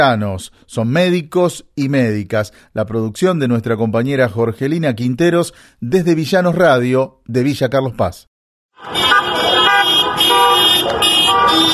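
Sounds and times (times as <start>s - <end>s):
speech: 0.0s - 9.2s
car horns honking in protest in Córdoba province: 8.8s - 11.7s.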